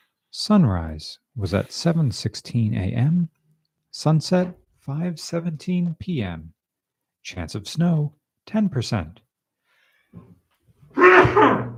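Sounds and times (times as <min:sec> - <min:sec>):
speech: 0:00.4 - 0:03.4, 0:04.0 - 0:06.6, 0:07.2 - 0:09.2, 0:10.1 - 0:10.4, 0:11.2 - 0:11.7
sneeze: 0:10.9 - 0:11.7.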